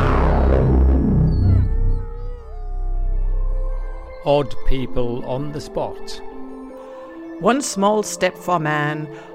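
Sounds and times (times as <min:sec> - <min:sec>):
several dogs howling in chorus: 0:00.2 - 0:07.6
speech: 0:04.2 - 0:06.5, 0:07.4 - 0:09.3.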